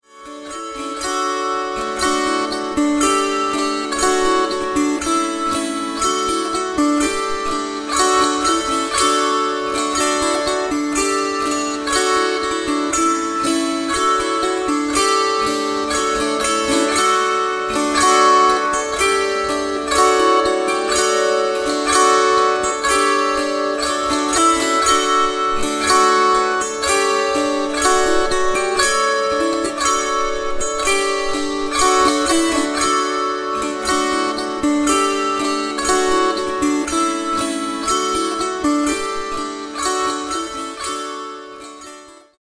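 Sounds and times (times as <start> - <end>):
kantele: 0.0 - 42.3.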